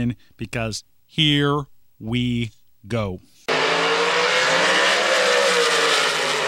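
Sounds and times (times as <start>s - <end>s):
speech: 0.0s - 3.3s
drag race car engine roaring: 3.5s - 6.4s
drag race car tires squealing in the water box: 3.5s - 6.4s.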